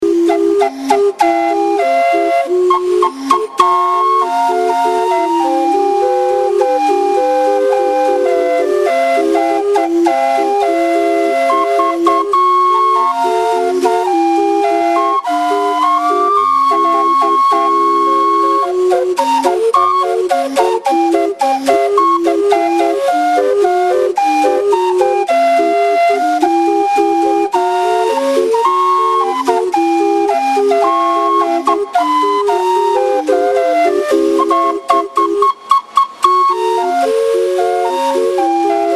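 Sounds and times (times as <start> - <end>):
calliope on a barge: 0.0 - 38.9.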